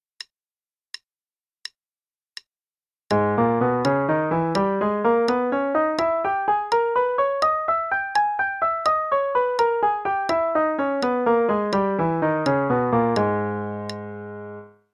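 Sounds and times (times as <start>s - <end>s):
G sharp harmonic minor scale over three octaves: 3.1s - 14.9s.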